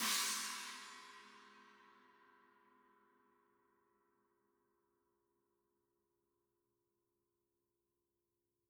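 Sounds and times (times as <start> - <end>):
China cymbal: 0.0 - 2.0.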